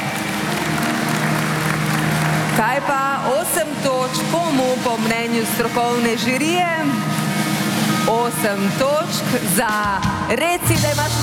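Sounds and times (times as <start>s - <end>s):
audience applauding at a song contest: 0.0s - 5.6s
speech: 2.6s - 7.2s, 8.1s - 11.2s.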